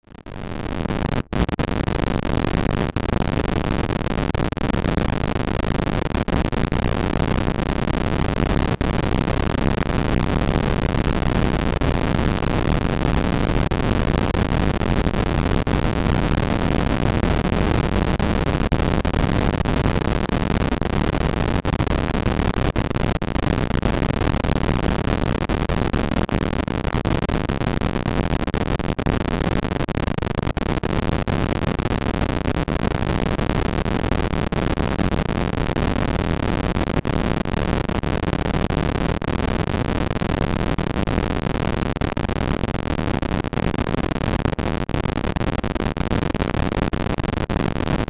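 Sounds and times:
hard static crackle drone: 0:00.0 - 0:48.0.

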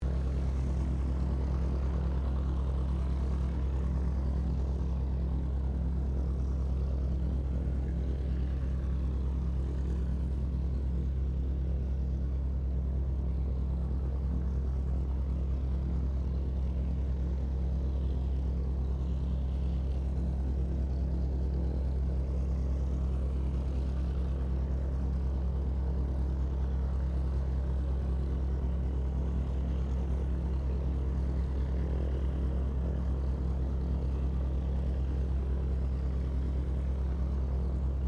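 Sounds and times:
distant Hawker Sea Fury fighter-bomber aircraft idling: 0:00.0 - 0:38.0.

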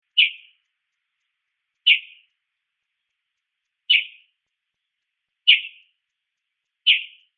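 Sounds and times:
mockingbird chirping: 0:00.0 - 0:00.7, 0:01.7 - 0:02.4, 0:03.8 - 0:06.0, 0:06.8 - 0:07.3.

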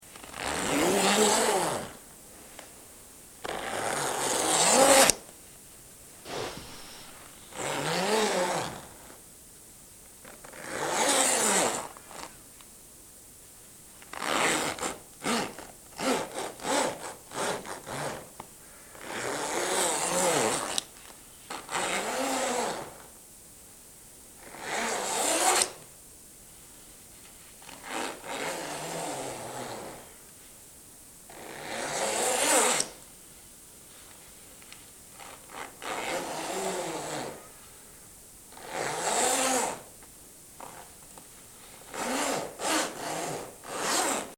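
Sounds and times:
zipper moving: 0:00.1 - 0:02.0, 0:03.4 - 0:05.2, 0:06.2 - 0:09.2, 0:10.2 - 0:12.3, 0:14.1 - 0:18.3, 0:19.0 - 0:20.9, 0:21.5 - 0:23.0, 0:24.4 - 0:25.8, 0:27.7 - 0:30.1, 0:31.3 - 0:33.0, 0:35.1 - 0:37.5, 0:38.5 - 0:39.9, 0:40.6 - 0:41.0, 0:41.8 - 0:44.3.

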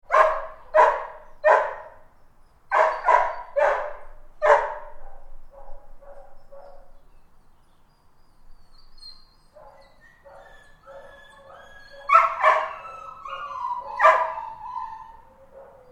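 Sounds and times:
dogs barking inside kennels: 0:00.1 - 0:02.0, 0:02.7 - 0:07.0, 0:09.5 - 0:15.8
dogs whining in kennels interior: 0:08.6 - 0:15.8.

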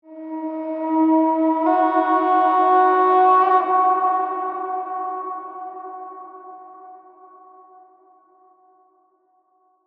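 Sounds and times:
eerie musical horn call: 0:00.1 - 0:06.6.

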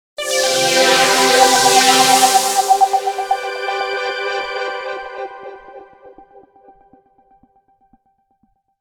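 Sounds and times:
sonic logo sweeper with shimmer delays: 0:00.2 - 0:06.5.

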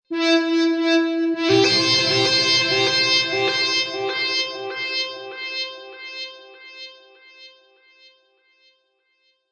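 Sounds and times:
synthesizer element in E minor: 0:00.1 - 0:05.9.

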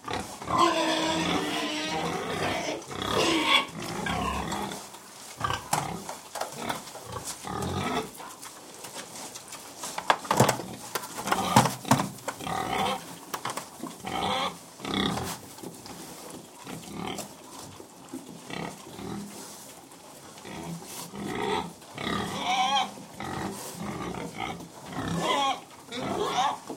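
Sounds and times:
cows: 0:00.0 - 0:26.7
pigs grunting and snuffling while feeding indoors: 0:00.0 - 0:26.7.

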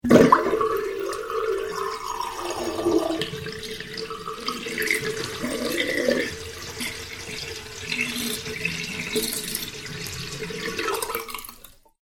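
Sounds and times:
water draining from a full small kitchen sink: 0:00.0 - 0:12.0.

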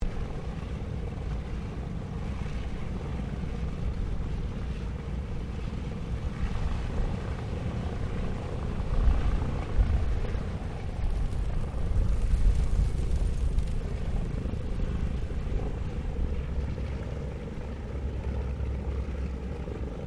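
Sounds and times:
Lockheed L-1049 Super Constellation aircraft taxiing: 0:00.0 - 0:20.0.

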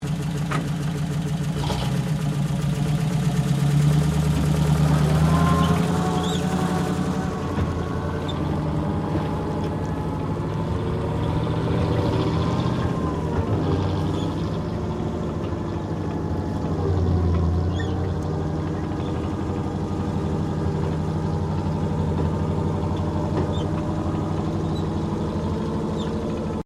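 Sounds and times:
British Universal Carrier tracked vehicle engine starting: 0:00.0 - 0:26.6.

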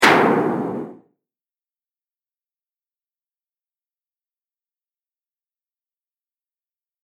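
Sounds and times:
heavyweight bomb explosion: 0:00.0 - 0:01.0.

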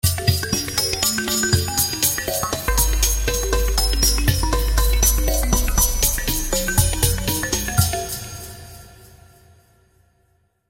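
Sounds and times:
tribal percussion hits: 0:00.5 - 0:08.9.

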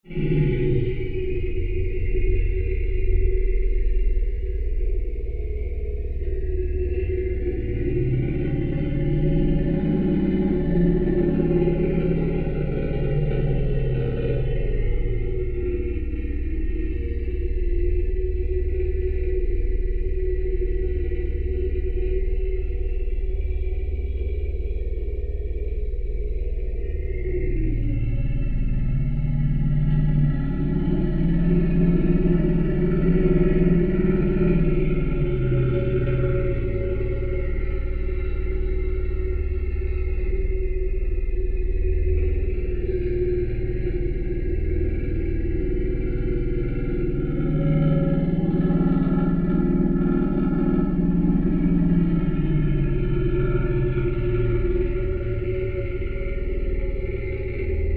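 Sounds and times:
guttural creature monster vocal drone: 0:00.0 - 0:57.9.

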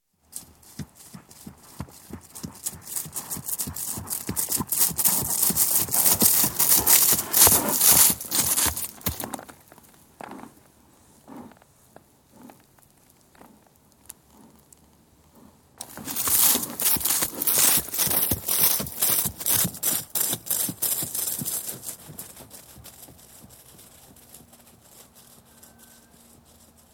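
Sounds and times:
horse trotting through grass: 0:00.2 - 0:10.6, 0:15.8 - 0:26.9.

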